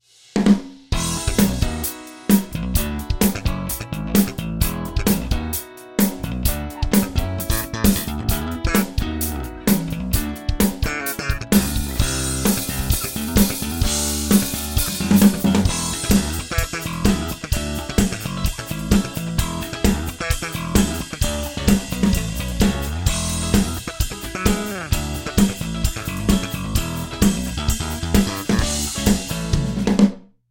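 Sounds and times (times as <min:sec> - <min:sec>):
live band drum kit on an Ensoniq DP Pro: 0:00.0 - 0:30.2.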